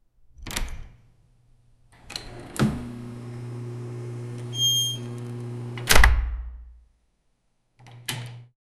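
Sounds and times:
scary door opening: 2.0s - 6.2s.

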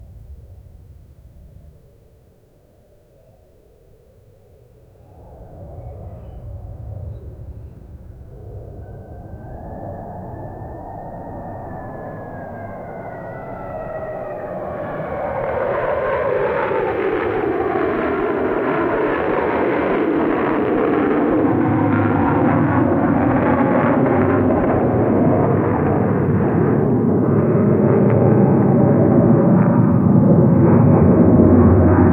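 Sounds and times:
plane tail blast in a disaster: 12.2s - 32.1s.

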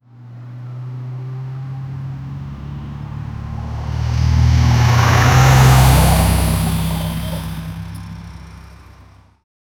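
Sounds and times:
heavy vehicles colliding: 2.3s - 9.2s.

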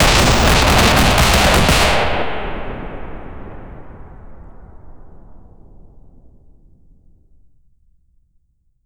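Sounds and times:
suppressed gunfire bursts: 0.0s - 2.7s.

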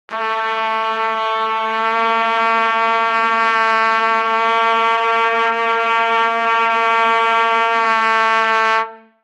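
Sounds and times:
fast triumphant trumpet: 0.1s - 9.2s.

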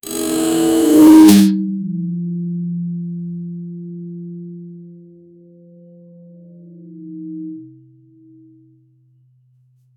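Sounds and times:
big sharp blade vibrating: 0.0s - 1.6s.

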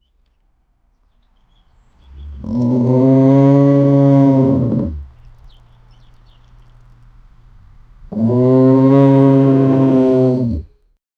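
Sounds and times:
large bison groaning: 2.1s - 5.1s, 8.1s - 10.7s.

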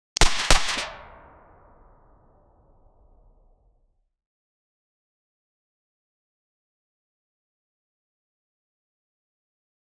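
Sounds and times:
pistol gunshot: 0.2s - 2.2s.

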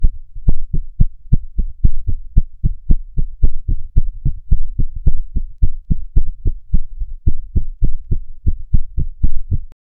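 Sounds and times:
fast heartbeat: 0.0s - 9.8s.

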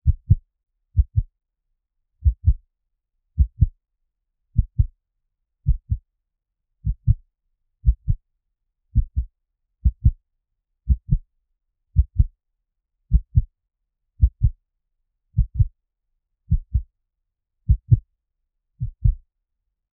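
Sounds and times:
slow heartbeat: 0.0s - 0.4s, 1.0s - 1.3s, 2.2s - 2.6s, 3.4s - 3.8s, 4.6s - 4.9s, 5.7s - 6.0s, 6.8s - 7.2s, 7.8s - 8.2s, 9.0s - 10.2s, 10.9s - 11.2s, 12.0s - 12.4s, 13.1s - 13.5s, 14.2s - 14.6s, 15.4s - 15.8s, 16.5s - 16.9s, 17.7s - 18.1s, 18.8s - 19.2s.

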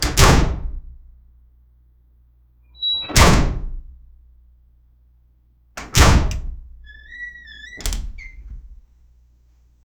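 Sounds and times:
metal door closing: 2.8s - 3.9s, 5.8s - 8.9s.

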